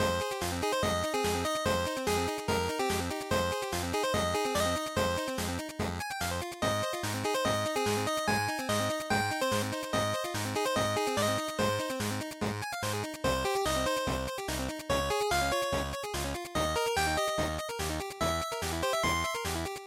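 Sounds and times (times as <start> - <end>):
chiptune RPG battle background music loop: 0.0 - 19.8.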